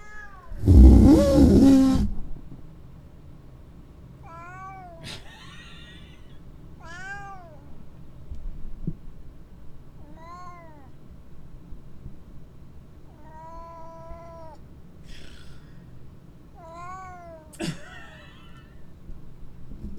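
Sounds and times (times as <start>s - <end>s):
cat at a house meowing: 0.0s - 0.8s, 4.2s - 7.8s, 10.0s - 11.0s, 13.1s - 14.6s, 16.5s - 18.6s
cat at a house yowling: 0.0s - 2.0s, 4.2s - 7.8s, 10.0s - 11.0s, 13.1s - 15.6s, 16.5s - 18.7s.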